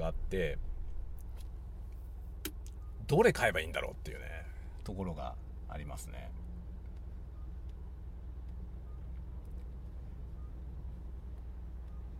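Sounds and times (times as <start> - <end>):
car cabin engine and road drone while driving: 0.0 - 12.1
speech: 0.3 - 0.7, 3.1 - 6.4.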